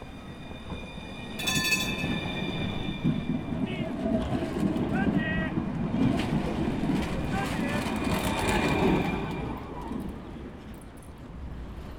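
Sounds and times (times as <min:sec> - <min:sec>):
tram wheels squealing on rails: 0:00.0 - 0:05.6, 0:07.0 - 0:10.6
tram wheels rolling on rails: 0:00.0 - 0:11.9.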